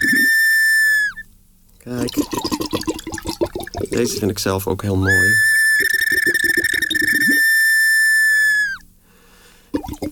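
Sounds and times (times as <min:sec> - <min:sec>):
small whistle blown in a long shrill steady note: 0:00.0 - 0:01.3, 0:05.1 - 0:08.9
speech: 0:01.8 - 0:03.0, 0:03.8 - 0:05.6.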